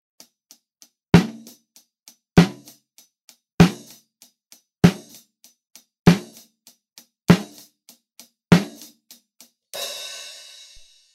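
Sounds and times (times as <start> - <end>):
snare drum recorded with AKG D190: 1.2 - 1.6, 2.4 - 2.8, 3.6 - 4.0, 4.8 - 5.2, 6.1 - 6.5, 7.3 - 7.7, 8.5 - 9.0.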